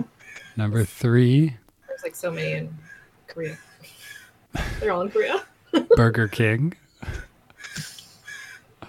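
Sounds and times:
speech: 0.0s - 7.2s
crows cawing outside open window: 0.2s - 0.6s, 1.8s - 4.5s, 7.1s - 8.8s.

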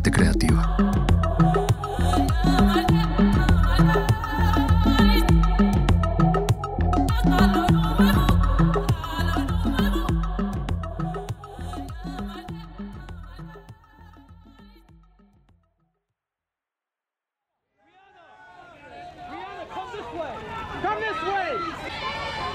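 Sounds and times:
music: 0.0s - 16.0s
speech: 0.2s - 0.8s
crowd on the red carpet at the Toronto film festival chattering and calling out: 17.9s - 22.5s.

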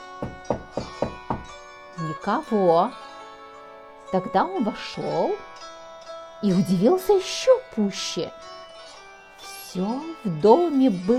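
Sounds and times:
knocking on a wooden door: 0.2s - 1.6s
speech: 2.0s - 3.0s, 4.1s - 5.5s, 6.4s - 8.6s, 9.7s - 11.1s.

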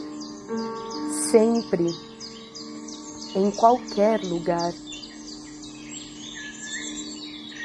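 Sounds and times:
birds chirping and twittering in a city: 0.0s - 7.6s
speech: 1.3s - 2.1s, 3.3s - 4.8s.

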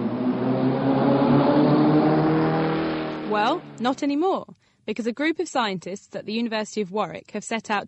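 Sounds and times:
powerful sports car engine revving: 0.0s - 3.8s
speech: 3.3s - 7.8s.

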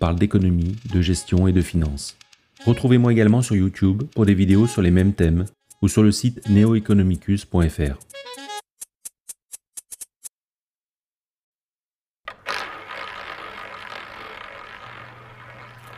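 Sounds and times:
casino roulette wheel and ball spinning: 0.0s - 5.0s, 12.3s - 15.9s
speech: 0.0s - 8.4s.

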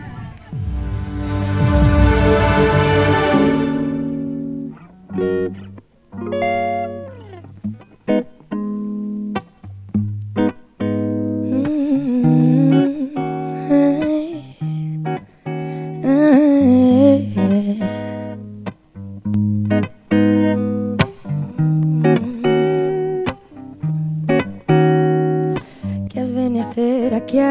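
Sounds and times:
plucked strings strumming a steady rhythm: 0.5s - 14.2s, 18.7s - 25.8s
woman singing acoustic version of a pop song: 11.5s - 14.9s, 16.0s - 18.2s, 21.6s - 23.3s, 26.1s - 27.4s.

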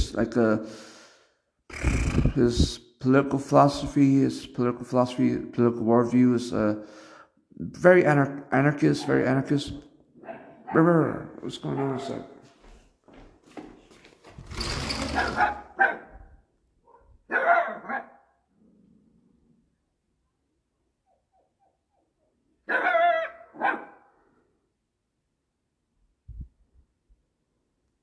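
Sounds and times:
speech: 0.1s - 0.9s, 1.7s - 9.9s, 10.7s - 12.3s
dog barking: 9.0s - 9.3s, 10.2s - 10.9s, 11.7s - 12.4s, 15.2s - 16.3s, 16.9s - 18.2s, 22.7s - 24.1s.

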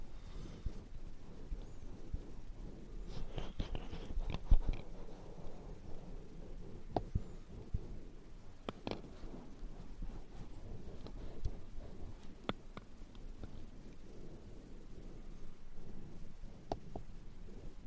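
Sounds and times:
ear cleaning and massage rubbing and brushing: 0.0s - 17.8s
sharp little clicks and scratchy taps: 3.2s - 5.6s, 6.7s - 7.8s, 8.6s - 14.0s, 16.6s - 17.1s.

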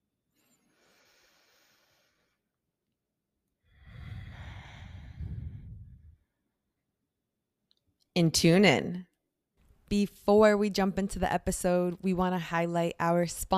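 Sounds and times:
deep breath in: 0.5s - 2.5s, 3.7s - 6.3s
speech: 8.2s - 9.1s, 9.9s - 13.5s.

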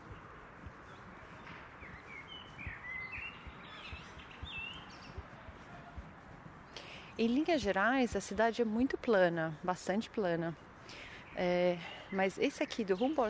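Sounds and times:
birds chirping and tweeting in a park: 0.0s - 13.2s
faint footsteps or shuffling: 0.0s - 13.2s
speech: 7.2s - 13.2s.

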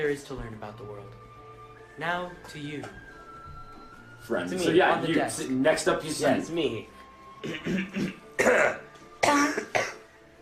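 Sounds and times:
speech: 0.0s - 1.4s, 2.0s - 3.1s, 4.2s - 9.7s
soft throat-clearing grunts: 7.4s - 10.0s
person coughing: 7.4s - 10.1s.

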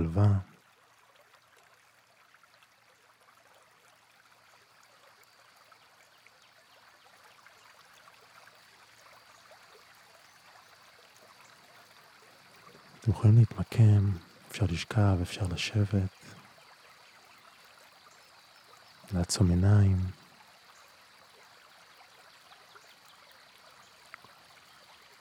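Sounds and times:
stream water flowing: 0.0s - 25.1s
speech: 13.1s - 16.2s, 19.2s - 20.2s.

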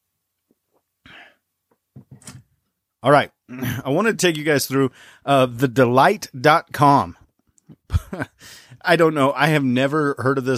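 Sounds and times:
speech: 3.0s - 7.2s, 8.0s - 10.5s
person coughing from a tickle in the throat: 3.5s - 3.8s.

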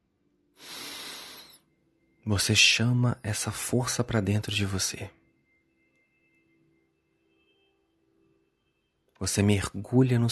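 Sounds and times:
deep airy inhalation: 0.6s - 1.6s
speech: 2.2s - 5.2s, 9.2s - 10.3s.

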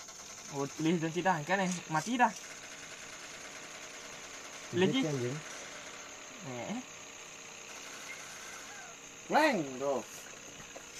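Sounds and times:
motorbike engine idling: 0.0s - 10.9s
speech: 0.5s - 2.5s, 4.7s - 5.5s, 6.4s - 7.0s, 9.3s - 10.2s.

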